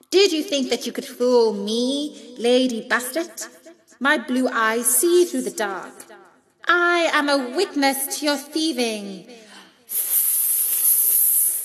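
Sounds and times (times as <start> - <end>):
speech: 0.2 - 10.0
sharp hiss: 9.9 - 11.6.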